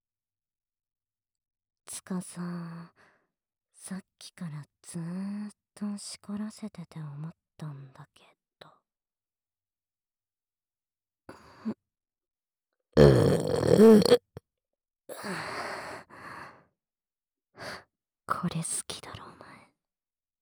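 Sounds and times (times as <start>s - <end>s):
speech: 1.9s - 3.1s, 3.8s - 8.8s, 13.0s - 14.2s, 18.4s - 19.2s
breathy sounds: 13.0s - 14.3s
girl burping close to the microphone: 13.0s - 14.4s.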